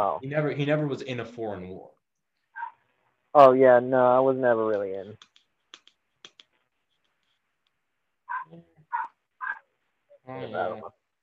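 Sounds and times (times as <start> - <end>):
speech: 0.0 - 2.0, 3.4 - 5.3, 10.3 - 11.0
dog barking: 2.6 - 2.8, 8.3 - 9.6
sharp clicking: 4.7 - 7.8.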